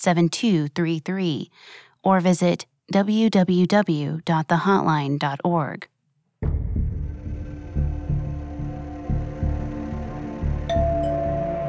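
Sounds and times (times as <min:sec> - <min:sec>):
speech: 0:00.0 - 0:06.9
deep throbbing drone: 0:06.4 - 0:11.6
higher tone: 0:07.3 - 0:11.6
front-door doorbell chime ringing: 0:10.7 - 0:11.6.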